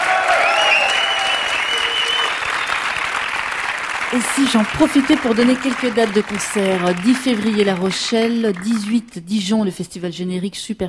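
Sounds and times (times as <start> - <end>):
faint whistles or cheers: 0.0 - 3.1
studio audience applause: 0.0 - 9.0
speech: 4.1 - 10.8.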